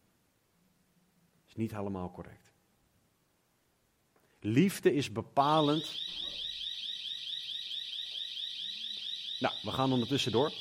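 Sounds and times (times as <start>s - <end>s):
speech: 1.5s - 2.5s, 4.4s - 6.4s, 9.4s - 10.5s
electronic alarm ringing with a warbling high-pitched tone: 5.6s - 10.5s.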